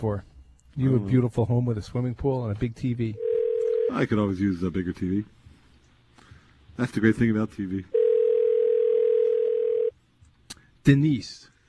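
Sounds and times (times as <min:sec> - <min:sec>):
speech: 0:00.0 - 0:03.2, 0:03.9 - 0:05.4, 0:06.8 - 0:08.0, 0:10.8 - 0:11.5
telephone dial tone while dialing: 0:03.2 - 0:04.0, 0:08.0 - 0:09.9.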